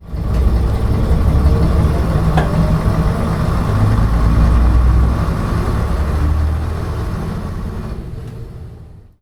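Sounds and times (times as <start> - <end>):
AEC Routemaster bus: 0.0 - 9.1.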